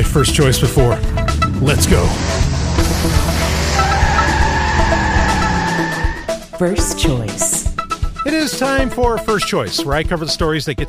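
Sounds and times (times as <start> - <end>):
car engine roaring as the vehicle pulls away: 0.0 - 6.4
speech: 0.2 - 3.6, 6.6 - 7.6, 8.2 - 10.8
car tires squealing: 0.3 - 6.4.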